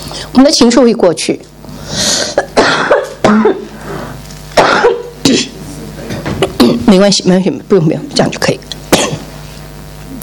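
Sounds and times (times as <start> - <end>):
speech: 0.3 - 2.0, 6.9 - 8.7
person coughing harshly: 2.1 - 6.9, 8.9 - 9.3
throat-clearing: 2.1 - 6.9, 8.9 - 9.3.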